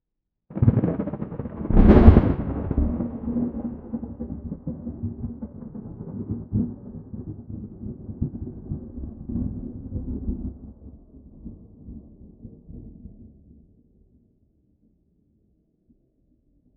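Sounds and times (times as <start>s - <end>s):
thunder in an open field: 0.5s - 13.1s.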